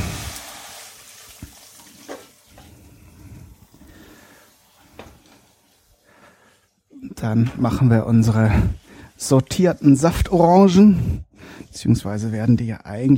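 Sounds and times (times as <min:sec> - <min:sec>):
faint splash of water: 0:00.0 - 0:02.4
hot frying pan hissing and sizzling: 0:00.0 - 0:06.6
speech: 0:07.2 - 0:13.1.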